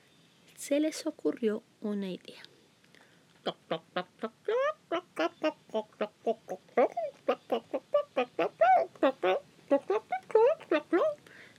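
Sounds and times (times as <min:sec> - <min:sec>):
speech: 0:00.7 - 0:02.5, 0:03.4 - 0:04.6, 0:05.4 - 0:10.0
voice imitating hens clucking: 0:03.4 - 0:11.2.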